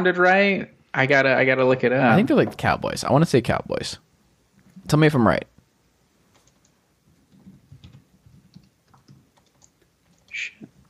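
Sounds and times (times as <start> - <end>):
speech: 0.0 - 4.1, 4.8 - 5.5
rapid typing on a computer keyboard: 6.3 - 10.3.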